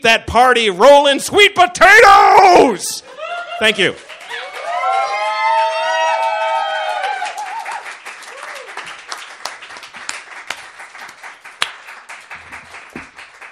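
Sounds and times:
speech: 0.0 - 4.1
high whoops and cheers: 3.0 - 8.9
audience applause: 3.0 - 13.5.

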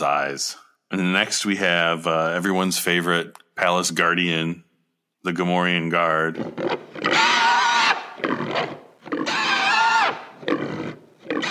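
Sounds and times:
speech: 0.0 - 4.6, 5.2 - 7.3
baby pig squealing: 6.4 - 11.4.

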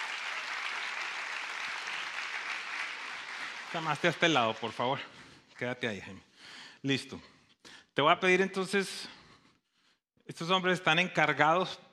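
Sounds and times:
audience applause: 0.0 - 4.9
speech: 3.7 - 7.3, 8.0 - 9.2, 10.3 - 11.8.

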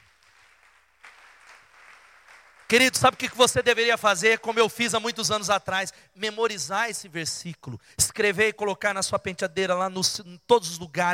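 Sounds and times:
crowd applauding at a Christian worship service after a prayer: 0.0 - 3.8
speech: 2.7 - 11.1.

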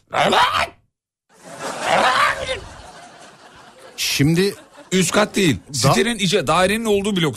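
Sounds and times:
voice mimicking a cat's wailing cry: 0.0 - 0.8, 1.8 - 2.7
speech: 0.1 - 0.7, 4.2 - 7.3
laughter: 1.3 - 6.2.

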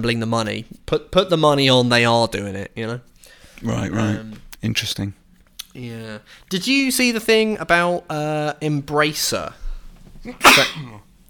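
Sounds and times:
speech: 0.0 - 5.2, 5.8 - 9.6, 10.2 - 11.0
person sneezing: 10.4 - 11.0.

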